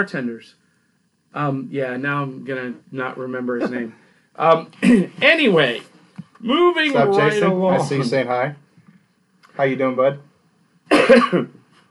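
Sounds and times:
speech: 0.0s - 0.6s, 1.3s - 8.6s, 9.6s - 10.3s, 10.9s - 11.6s
harsh cough from a man with a cold: 3.5s - 4.0s, 10.9s - 11.6s.

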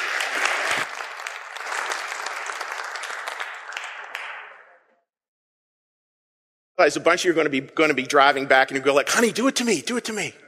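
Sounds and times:
audience applauding: 0.0s - 4.9s
speech: 6.8s - 10.4s.

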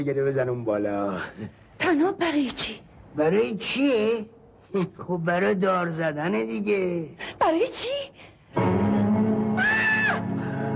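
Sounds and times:
speech: 0.0s - 8.8s
girl screaming shrilly: 9.5s - 10.3s.

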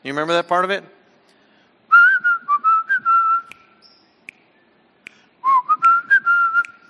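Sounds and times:
speech: 0.0s - 1.0s
person whistling a bright tune: 1.9s - 4.0s, 4.6s - 6.8s.

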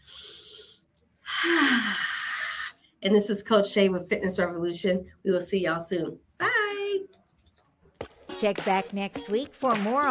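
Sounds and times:
deep breath in and out during a relaxation exercise: 0.0s - 2.8s
speech: 3.0s - 6.3s, 8.4s - 10.0s.

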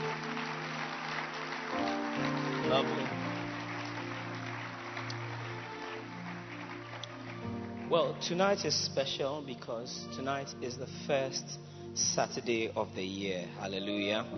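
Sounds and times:
audience clapping: 0.0s - 9.0s
sustained low musical tones: 0.0s - 14.3s
speech: 7.9s - 14.3s.

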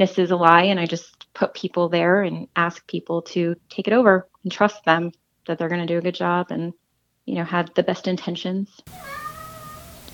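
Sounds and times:
speech: 0.0s - 9.2s
cat meowing: 8.9s - 10.1s.

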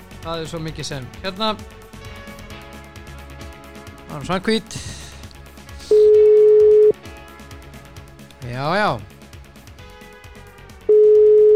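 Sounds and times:
speech: 0.2s - 1.8s, 4.1s - 5.0s, 8.4s - 9.2s
steady mid-pitch telephone dial tone: 6.0s - 6.9s, 10.9s - 11.5s.

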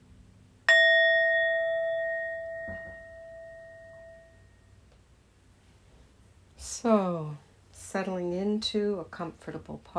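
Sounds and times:
meditation bell struck to begin a meditation practice: 0.7s - 4.8s
speech: 6.8s - 9.9s.

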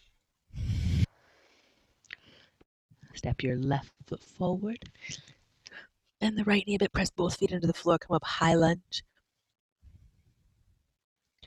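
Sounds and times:
slow exhale during a breathing exercise: 0.5s - 2.6s
soft breathing: 0.5s - 2.7s
speech: 3.2s - 5.4s, 6.2s - 9.1s.

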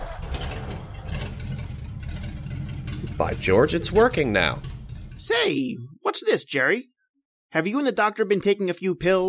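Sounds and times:
car engine starting and idling: 0.0s - 5.5s
speech: 3.2s - 6.9s, 7.5s - 9.2s.

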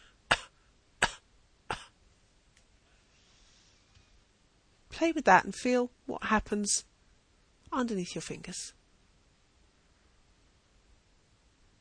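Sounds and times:
person giving soft short coughs during a voice exercise: 0.3s - 2.0s
speech: 5.0s - 6.9s, 7.7s - 8.8s.

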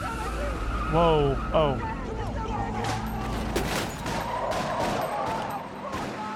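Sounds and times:
dense chaotic rumble: 0.0s - 6.2s
speech: 0.9s - 2.0s
repeated sharp gunshots in an exchange of fire: 3.6s - 6.3s.

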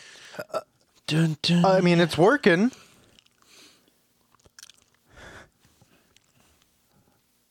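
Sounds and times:
speech: 1.1s - 2.8s
chewing crunchy food: 3.0s - 5.1s.

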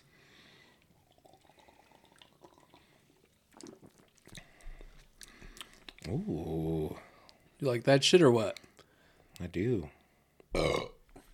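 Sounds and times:
person sipping a drink with slurps and swallows: 0.6s - 6.1s
speech: 6.1s - 7.0s, 7.6s - 8.6s, 9.4s - 10.0s.

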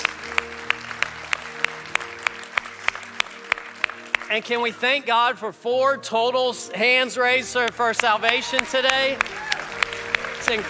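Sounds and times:
crowd clapping in unison: 0.0s - 5.1s, 7.6s - 10.6s
speech: 4.3s - 9.4s, 10.5s - 10.6s.

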